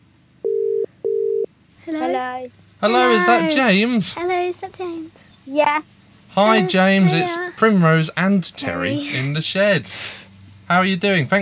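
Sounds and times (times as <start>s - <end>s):
outgoing phone call ringing tone: 0.4s - 1.5s
speech: 1.9s - 11.3s.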